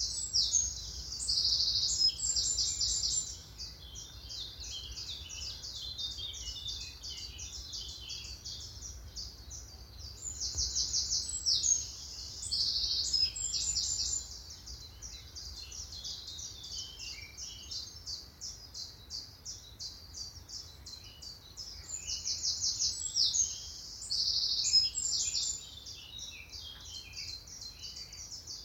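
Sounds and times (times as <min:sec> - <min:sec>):
songbirds chirping in a dawn chorus: 0:00.0 - 0:28.6
wren-like loud rapid trilling phrase: 0:00.0 - 0:28.6.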